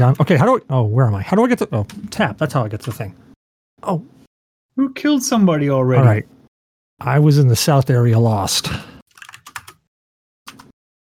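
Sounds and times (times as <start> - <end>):
speech: 0.0 - 4.2, 4.8 - 6.4, 7.0 - 9.0
typing on a computer keyboard while playing a video game: 9.1 - 9.9, 10.5 - 11.1.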